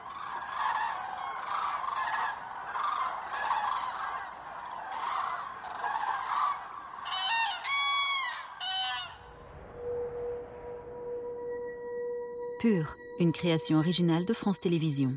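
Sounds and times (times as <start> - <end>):
flock of cranes calling at a lake roost: 0.0 - 9.4
steady low tone: 9.1 - 15.1
speech: 12.6 - 15.1.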